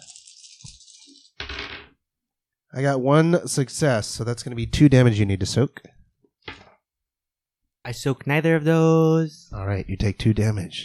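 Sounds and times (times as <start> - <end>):
tabletop game dice shaken and rolled: 0.0 - 2.0
speech: 2.8 - 6.0, 7.9 - 10.8.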